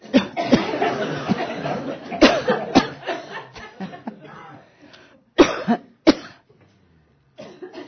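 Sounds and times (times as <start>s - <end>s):
person coughing deliberately during a throat chakra exercise: 0.0s - 1.5s, 2.1s - 3.0s, 5.4s - 6.4s, 7.4s - 7.8s
laughter: 0.0s - 4.7s
person speaking: 3.8s - 4.9s.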